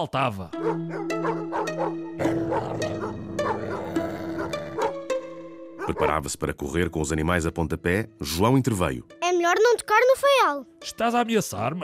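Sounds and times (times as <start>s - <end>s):
speech: 0.0s - 2.0s, 5.9s - 11.8s
dogs barking: 0.6s - 5.0s, 5.8s - 6.2s.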